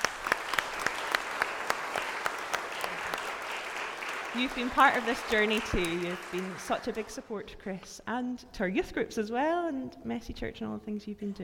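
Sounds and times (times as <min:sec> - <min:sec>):
small audience clapping: 0:00.0 - 0:07.4
speech: 0:04.4 - 0:11.4.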